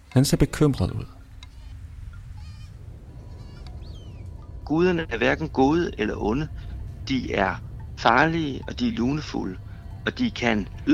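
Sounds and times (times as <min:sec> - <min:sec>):
speech: 0:00.2 - 0:01.2, 0:04.7 - 0:10.9
steady heavy low rumble: 0:00.6 - 0:10.9
drowning goat bleating: 0:01.5 - 0:03.8.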